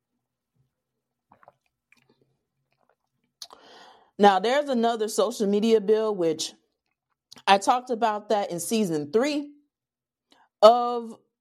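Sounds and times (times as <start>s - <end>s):
person sipping tea with wet mouth noises: 1.3s - 1.7s
soft swallow: 1.3s - 3.6s
speech: 4.2s - 6.6s, 7.4s - 9.6s, 10.6s - 11.2s.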